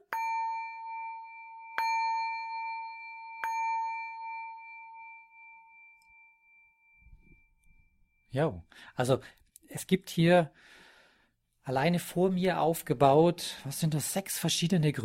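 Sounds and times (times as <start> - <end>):
singing bowl struck with bright ringing tone: 0.0 - 8.3
speech: 8.4 - 10.8, 11.7 - 15.0.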